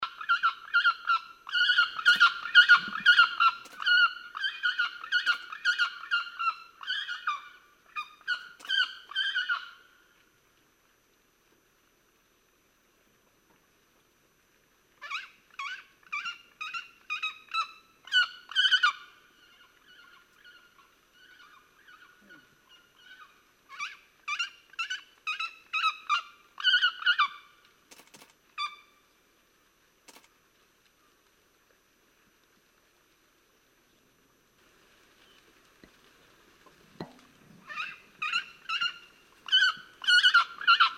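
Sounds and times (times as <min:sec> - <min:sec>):
Haliaeetus leucoryphus calling in Corbett: 0:00.0 - 0:09.8, 0:15.0 - 0:27.4, 0:36.9 - 0:40.9.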